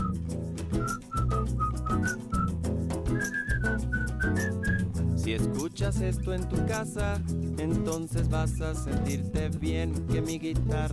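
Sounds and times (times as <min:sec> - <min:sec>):
clear whistled melody with a catchy hook: 0:00.0 - 0:05.0
speech: 0:05.3 - 0:10.9.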